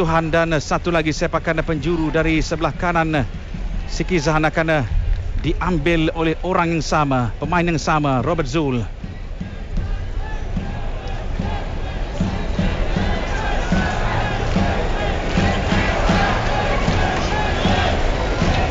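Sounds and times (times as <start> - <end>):
speech: 0.0 - 9.0
dense crowd of visiting football fans roaring in stadium away stands: 9.4 - 18.7.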